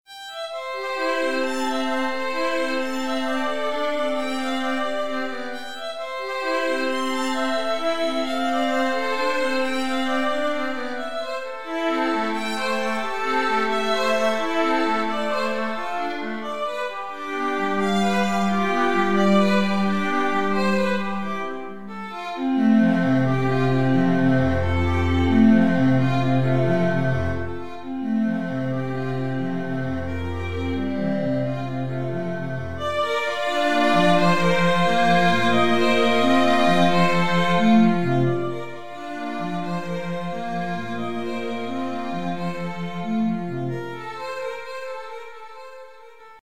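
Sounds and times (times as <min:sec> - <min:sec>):
strings playing: 0:00.1 - 0:46.3.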